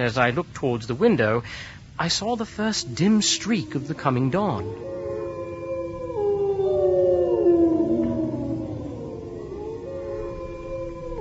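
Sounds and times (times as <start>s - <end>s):
speech: 0.0s - 5.0s
several wolves howling together: 2.5s - 11.1s.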